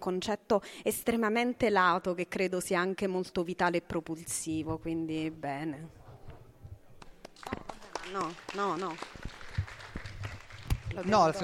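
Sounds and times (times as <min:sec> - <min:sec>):
speech: 0:00.0 - 0:06.0, 0:07.4 - 0:09.4, 0:10.9 - 0:11.4
scattered claps from a small audience: 0:07.0 - 0:11.4.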